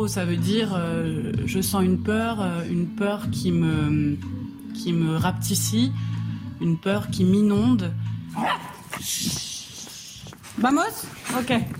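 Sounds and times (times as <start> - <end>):
speech: 0.0 - 9.5, 10.6 - 11.7
dogs barking excitedly: 8.3 - 9.0
high-pitched dog yip: 8.4 - 9.0.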